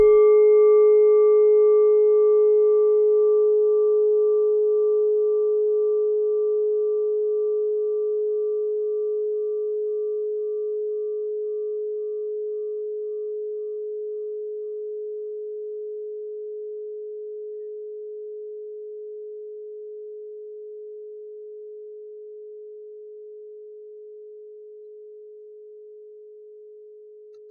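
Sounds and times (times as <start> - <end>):
singing bowl from Nepal: 0.0 - 15.7.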